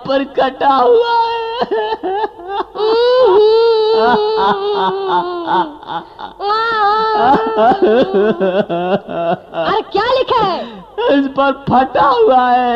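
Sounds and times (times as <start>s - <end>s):
speech: 0.1s - 12.7s
child crying in loud quavering wails: 1.0s - 8.8s
laughter: 1.6s - 11.1s.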